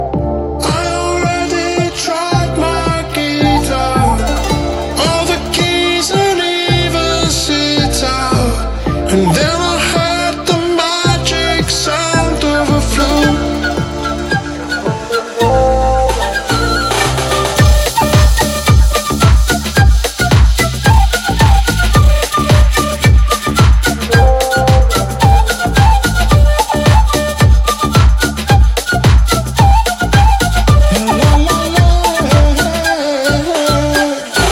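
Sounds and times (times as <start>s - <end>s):
flute playing: 0.0s - 34.5s.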